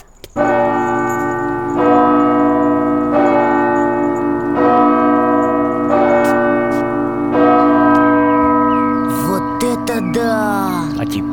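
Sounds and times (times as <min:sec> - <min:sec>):
two large bass church bells rung by foot pedals tolling: 0:00.4 - 0:11.3
voices: 0:09.1 - 0:11.3.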